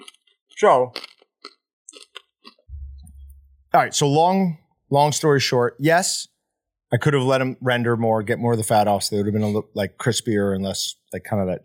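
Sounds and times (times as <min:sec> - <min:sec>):
loud crunchy chewing: 0:00.0 - 0:02.6
speech: 0:00.6 - 0:01.0, 0:03.8 - 0:06.3, 0:06.9 - 0:11.6
steady low rumble: 0:02.7 - 0:04.1.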